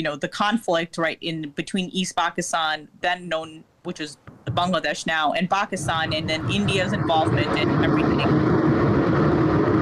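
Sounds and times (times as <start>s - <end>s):
speech: 0.0s - 8.6s
train passing: 5.7s - 9.7s.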